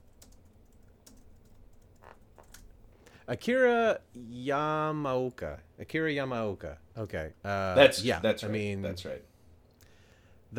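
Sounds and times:
typing on a computer keyboard: 0.0s - 2.7s
low hum: 0.0s - 10.5s
speech: 3.3s - 9.3s.

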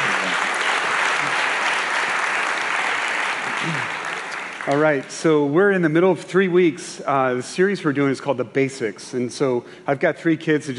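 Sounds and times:
large room full of people applauding: 0.0s - 5.0s
speech: 4.7s - 10.7s.

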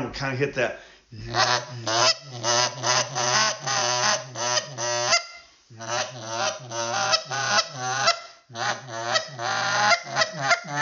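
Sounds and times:
speech: 0.1s - 3.6s
goose call blown in a buzz murmur: 1.3s - 10.8s.

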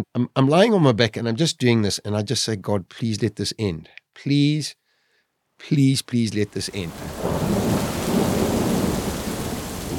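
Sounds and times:
speech: 0.0s - 4.8s, 5.6s - 7.6s
heavy rain in a thunderstorm: 6.6s - 9.9s
deep rumble of thunder: 6.8s - 9.9s.

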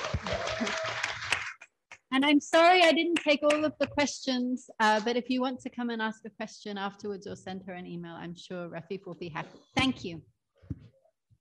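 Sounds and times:
audience applause: 0.0s - 1.7s
speech: 2.2s - 10.8s.

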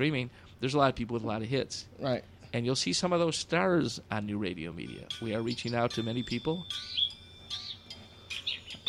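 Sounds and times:
speech: 0.0s - 7.6s
bird chirping: 5.2s - 8.8s.

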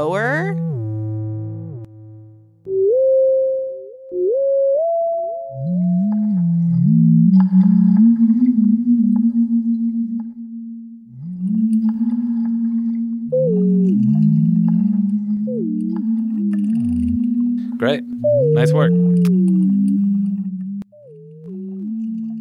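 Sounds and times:
speech: 0.0s - 0.7s
synthesized whale sounds from a web toy: 0.0s - 22.3s.

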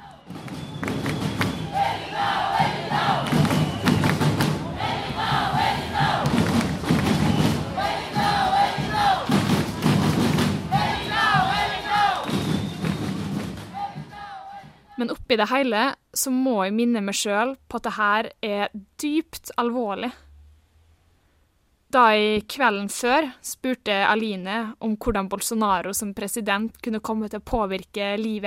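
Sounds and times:
large crowd chanting on a protest march: 0.0s - 15.0s
thumping drums or stamping: 0.2s - 14.9s
speech: 15.0s - 20.2s, 21.9s - 28.4s.

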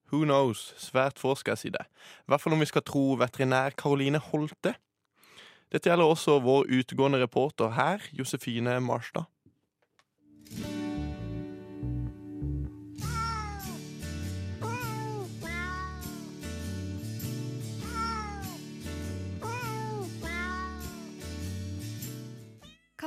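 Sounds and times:
speech: 0.1s - 4.8s, 5.7s - 9.3s
steady musical backing: 10.5s - 22.4s
cat meowing: 13.0s - 13.8s, 14.6s - 16.4s, 17.8s - 18.6s, 19.4s - 21.2s.

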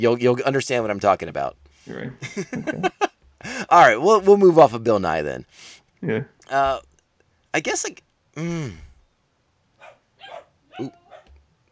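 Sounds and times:
speech: 0.0s - 3.1s, 3.7s - 6.9s, 7.6s - 8.8s, 10.8s - 11.0s
laughter: 2.1s - 4.0s
dog barking: 9.8s - 11.3s.

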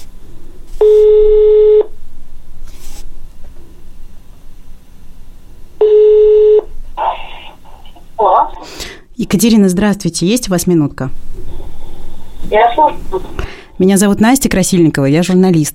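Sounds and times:
faint hiss: 0.0s - 15.7s
telephone ringing tones: 0.8s - 1.9s, 5.8s - 6.7s
speech: 9.2s - 11.2s, 12.5s - 15.7s.

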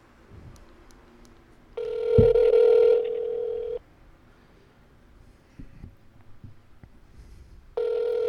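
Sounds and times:
telephone ringback tone of outgoing call to a radio station in Gettysburg Pennsylvania: 1.8s - 3.8s, 7.8s - 8.2s.

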